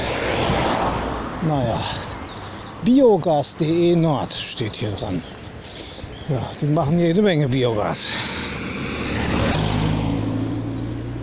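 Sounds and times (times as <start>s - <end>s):
cars driving past on a road: 0.0s - 2.9s, 7.7s - 11.2s
speech: 1.4s - 2.1s, 2.8s - 5.4s, 6.3s - 8.3s.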